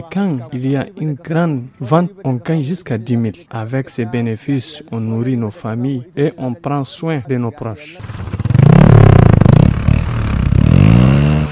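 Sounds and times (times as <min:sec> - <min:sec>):
speech: 0:00.0 - 0:08.4
just-refuelled motorcycle engine revving: 0:08.0 - 0:11.4.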